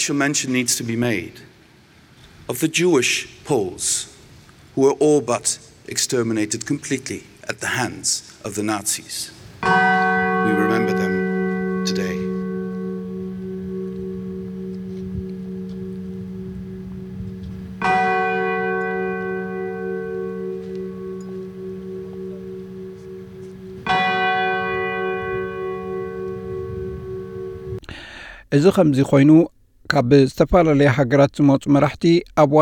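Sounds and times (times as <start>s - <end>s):
speech: 0.0s - 1.6s, 2.5s - 4.2s, 4.8s - 11.0s, 12.0s - 12.2s, 28.6s - 32.6s
memorial church bell ringing in Warsaw, Poland: 9.6s - 27.8s.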